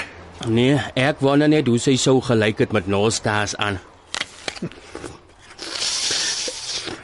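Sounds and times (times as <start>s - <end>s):
speech: 0.4s - 3.9s, 4.6s - 5.2s
biting and chewing a crunchy apple: 4.1s - 7.0s.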